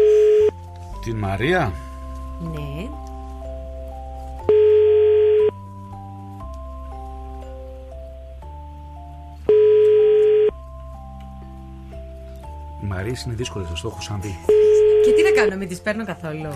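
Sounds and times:
unanswered phone line ringing: 0.0s - 0.6s, 4.5s - 5.6s, 9.5s - 10.6s, 14.5s - 15.5s
steady music: 0.0s - 16.5s
speech: 1.0s - 1.8s, 2.4s - 3.1s, 13.0s - 16.5s.

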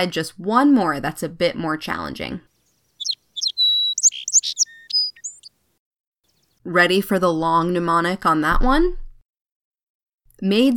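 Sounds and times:
speech: 0.0s - 2.5s, 6.6s - 9.0s, 10.4s - 10.7s
song sparrow singing: 2.5s - 5.6s.

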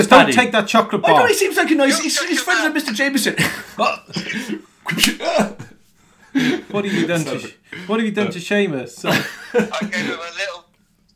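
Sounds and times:
speech: 0.0s - 5.7s, 6.4s - 10.6s
laughter: 3.2s - 7.6s, 9.0s - 10.4s
sharp slap to the back of someone's head: 4.9s - 5.2s.

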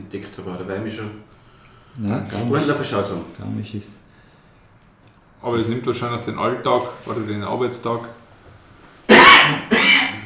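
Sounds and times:
speech: 0.0s - 1.4s, 2.0s - 4.0s, 5.4s - 8.2s
person sneezing: 9.1s - 10.2s.

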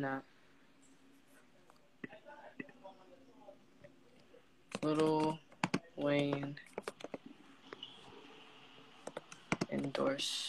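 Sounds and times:
speech: 0.0s - 0.3s, 4.8s - 5.4s, 6.0s - 6.6s, 9.8s - 10.4s
typing on a computer keyboard: 4.7s - 7.2s, 9.0s - 10.0s.

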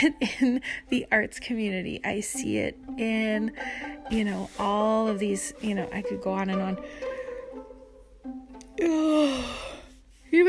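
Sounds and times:
speech: 0.0s - 7.1s, 8.2s - 9.7s
person yawning: 8.8s - 9.9s.

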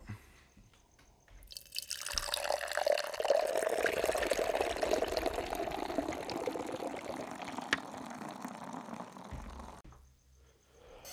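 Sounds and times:
nitro beer being poured from can: 1.5s - 9.8s.

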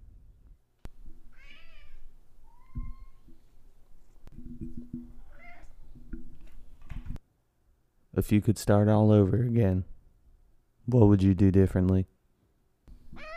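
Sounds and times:
cat meowing in reply: 1.3s - 3.3s, 5.2s - 5.8s, 13.1s - 13.3s
speech: 8.2s - 10.0s, 10.9s - 12.1s.

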